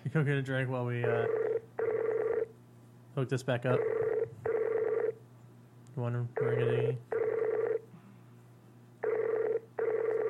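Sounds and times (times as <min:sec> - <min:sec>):
faint steady low hum: 0:00.0 - 0:10.2
speech: 0:00.1 - 0:01.5, 0:03.2 - 0:04.4, 0:06.0 - 0:07.1
Skype call ringtone repeating unanswered: 0:01.0 - 0:02.5, 0:03.8 - 0:05.2, 0:06.4 - 0:07.8, 0:09.0 - 0:10.2.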